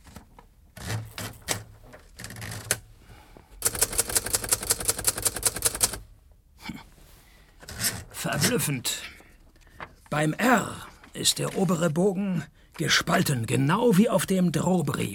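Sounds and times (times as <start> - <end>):
mechanical typewriter keystrokes: 3.6 - 6.0
speech: 8.2 - 9.1, 10.1 - 15.1.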